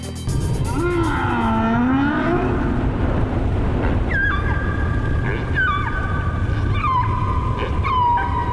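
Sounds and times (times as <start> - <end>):
steady underwater rumble in the middle of the ocean: 0.6 - 8.5
humpback whale song from two male humpback whales: 0.7 - 3.0, 3.7 - 8.5.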